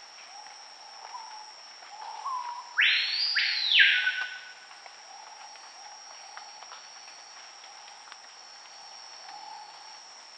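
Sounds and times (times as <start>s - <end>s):
steady high insect drone: 0.0s - 10.3s
Screaming piha Lipaugus vociferans whistled call: 2.0s - 4.6s.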